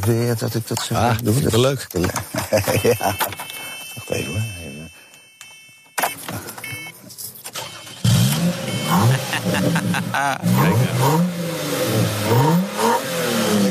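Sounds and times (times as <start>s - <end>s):
speech: 0.0s - 3.4s, 4.0s - 4.6s, 9.6s - 11.3s
laughter: 2.0s - 4.0s, 8.9s - 11.2s
car engine starting and revving: 7.5s - 13.6s.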